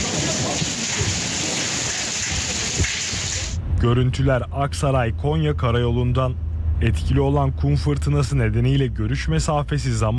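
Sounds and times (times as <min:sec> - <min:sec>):
hazelnut-sized hail pelting vehicles during a storm: 0:00.0 - 0:03.6
speech: 0:03.8 - 0:10.1.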